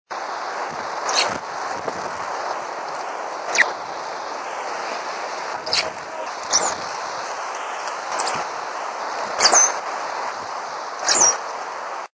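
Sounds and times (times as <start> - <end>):
short-billed thrush calling: 0.8 - 11.6.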